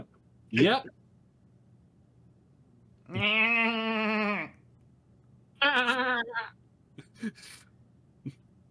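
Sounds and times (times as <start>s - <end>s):
speech: 0.5s - 1.0s, 3.1s - 4.5s, 5.6s - 6.6s, 7.2s - 7.6s
person imitating a screaming goat: 3.1s - 4.6s, 5.6s - 6.6s.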